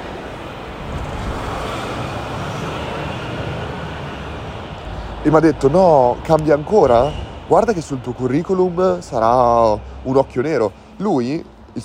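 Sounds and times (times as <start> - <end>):
truck rumbling past with engine and road noise: 0.0 - 11.8
speech: 5.2 - 11.8.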